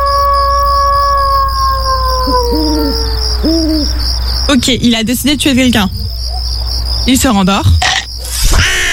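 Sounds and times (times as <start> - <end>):
voice imitating a wolf howl during a party game: 0.0 - 4.0
hooting calls: 0.0 - 4.7
crickets chirping: 0.0 - 8.9
speech: 4.5 - 6.4, 7.1 - 7.8.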